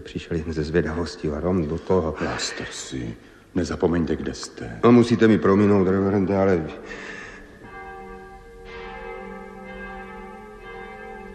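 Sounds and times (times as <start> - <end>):
speech: 0.0 - 7.2
church bells ringing in a peal: 4.8 - 11.3.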